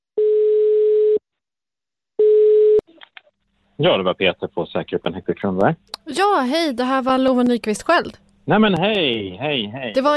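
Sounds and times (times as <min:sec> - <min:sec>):
low-pitched telephone ringing tone while calling a detention centre: 0:00.2 - 0:01.2, 0:02.2 - 0:02.8
speech: 0:03.8 - 0:10.1.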